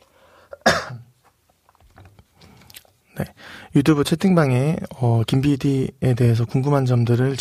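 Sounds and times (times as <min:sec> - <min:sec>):
person coughing: 0:00.5 - 0:01.1
speech: 0:03.2 - 0:07.3.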